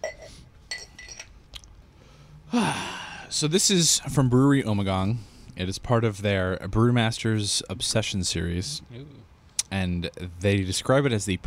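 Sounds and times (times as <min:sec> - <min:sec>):
used drinking glass clinking as it is handled: 0:00.0 - 0:01.3
speech: 0:02.5 - 0:11.4.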